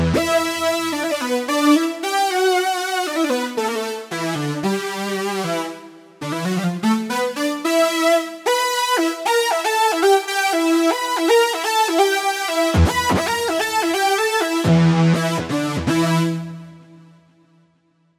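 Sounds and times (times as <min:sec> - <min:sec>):
glider synth lead on a Novation UltraNova: 0:00.1 - 0:16.2.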